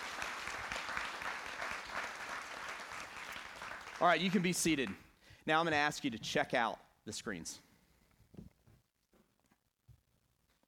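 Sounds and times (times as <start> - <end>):
crowd applauding in a large room: 0.0 - 5.0
speech: 4.0 - 7.7.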